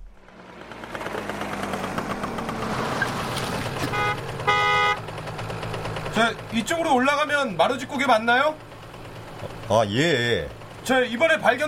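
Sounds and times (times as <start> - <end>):
car engine rumbling as a vehicle drives toward the Maruji pass: 0.0 - 11.6
car horn short loud toots: 3.8 - 5.1
speech: 6.2 - 8.7, 9.7 - 11.6.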